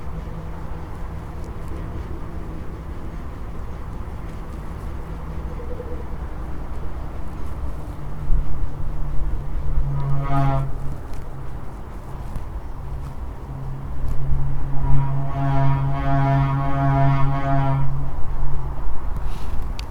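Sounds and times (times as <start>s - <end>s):
turbine resonance at 80 rpm: 0.0s - 19.8s.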